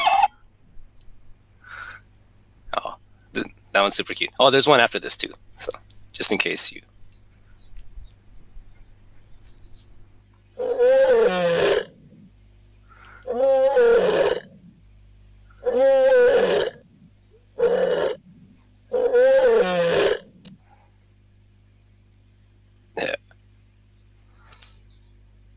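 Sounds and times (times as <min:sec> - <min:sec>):
faint low hum: 0:00.0 - 0:25.5
speech: 0:03.4 - 0:06.9
lion roaring: 0:10.6 - 0:12.2, 0:13.2 - 0:14.8, 0:15.6 - 0:16.8, 0:17.5 - 0:20.4.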